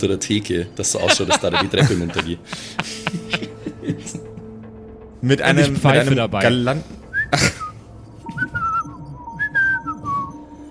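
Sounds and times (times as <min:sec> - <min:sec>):
speech: 0:00.0 - 0:04.2, 0:05.2 - 0:07.6
laughter: 0:00.9 - 0:04.6, 0:07.3 - 0:09.0
person whistling a short casual tune: 0:07.1 - 0:10.7.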